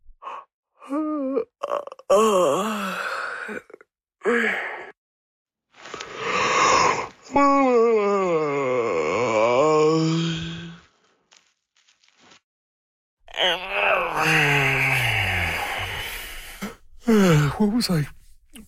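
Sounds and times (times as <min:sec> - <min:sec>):
person yawning: 0:00.9 - 0:04.9, 0:07.4 - 0:10.8, 0:13.3 - 0:17.5
speech: 0:17.8 - 0:18.1.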